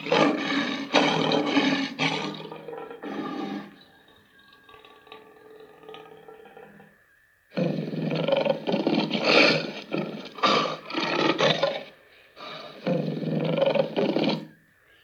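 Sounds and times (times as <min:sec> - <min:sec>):
lion roaring: 0:00.0 - 0:03.8, 0:07.6 - 0:14.5.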